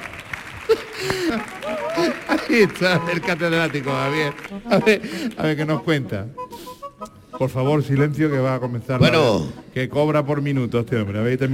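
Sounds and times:
small crowd clapping: 0.0s - 5.7s
laughter: 0.6s - 6.0s
speech: 0.7s - 6.4s, 7.4s - 11.5s.

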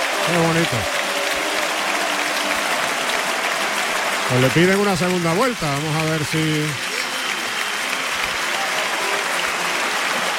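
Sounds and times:
crowd ovation at a bullfight in a bullring: 0.0s - 10.3s
speech: 0.3s - 1.0s, 4.3s - 6.9s.

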